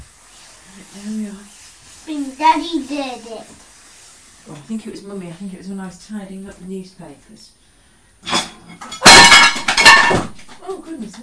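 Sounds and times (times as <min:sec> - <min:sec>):
speech: 0:00.9 - 0:03.6, 0:04.4 - 0:07.6, 0:10.1 - 0:11.2
plate knocked onto the floor smashing: 0:08.2 - 0:10.6
breaking pieces of plate clattering: 0:08.3 - 0:10.6.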